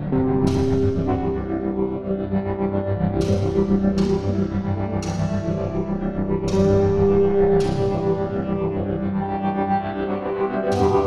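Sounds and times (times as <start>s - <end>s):
new age music: 0.1s - 11.0s.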